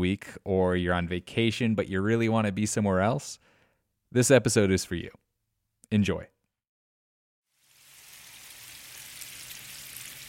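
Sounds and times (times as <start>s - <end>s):
speech: 0.0s - 3.5s, 4.1s - 5.2s, 5.9s - 6.3s
flour-dredged shrimp frying in hot oil at a po' boy shop in New Orleans: 7.5s - 10.2s.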